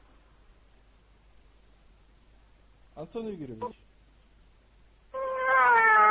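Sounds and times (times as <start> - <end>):
speech: 3.0 - 3.9
man imitating a drawn-out cat meow: 5.2 - 6.0.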